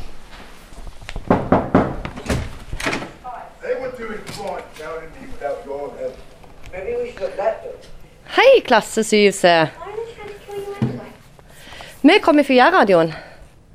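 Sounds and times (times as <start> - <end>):
knocking on a classroom door: 1.2 - 3.0, 10.8 - 11.1
door thunk: 1.3 - 3.2
speech: 4.0 - 9.9, 12.0 - 13.2.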